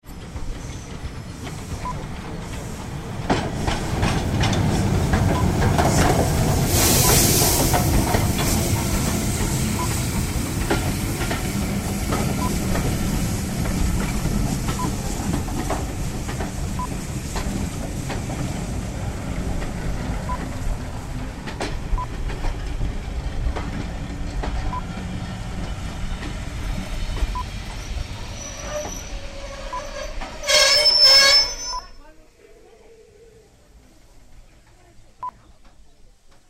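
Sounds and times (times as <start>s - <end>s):
steam train arriving at station: 0.0s - 36.4s.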